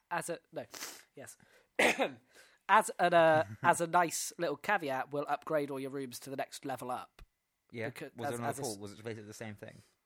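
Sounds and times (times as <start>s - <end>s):
speech: 0.1s - 9.9s
rough raspy throat-clearing coughs: 1.8s - 2.3s.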